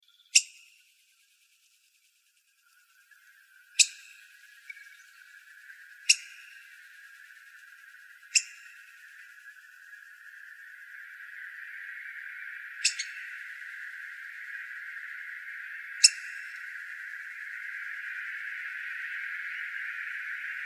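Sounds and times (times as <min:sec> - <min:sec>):
faint steady hiss: 0:00.1 - 0:20.6
black-headed grosbeak pik calls: 0:03.8 - 0:05.1, 0:06.0 - 0:06.7, 0:08.3 - 0:08.8, 0:12.8 - 0:13.4, 0:16.0 - 0:16.6.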